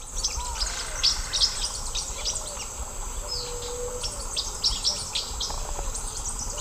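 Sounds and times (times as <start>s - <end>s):
Forpus xanthopterygius flight calls in South American Eastern Lowlands: 0.1s - 6.5s.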